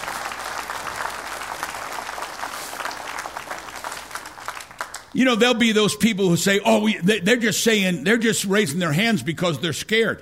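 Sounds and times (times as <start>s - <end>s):
congregation clapping: 0.0s - 5.8s
speech: 5.2s - 10.2s.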